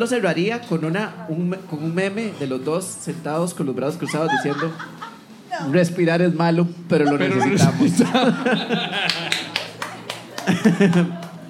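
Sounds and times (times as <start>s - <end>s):
speech: 0.0s - 9.4s, 10.6s - 11.2s
people talking and chuckling: 3.7s - 5.7s, 6.9s - 11.4s
single person clapping hands: 9.0s - 11.4s.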